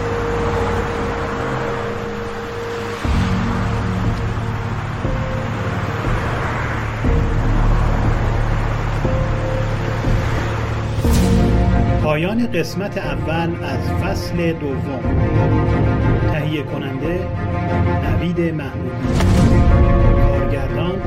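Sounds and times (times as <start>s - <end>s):
faint road noise: 0.0s - 11.9s
car engine rumbling as the car pulls up and stops: 0.0s - 12.0s
speech: 12.2s - 19.9s.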